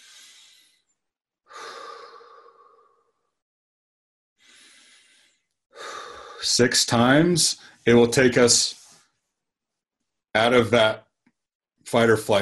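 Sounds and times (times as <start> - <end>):
deep slow breaths taken as a calming exercise: 0.0 - 3.4, 4.4 - 6.6
speech: 6.4 - 8.8, 10.4 - 11.0, 11.9 - 12.4.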